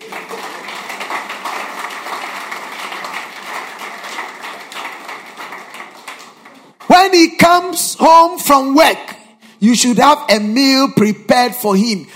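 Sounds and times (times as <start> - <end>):
audience of men applauding: 0.0 - 7.1
speech: 7.1 - 12.1.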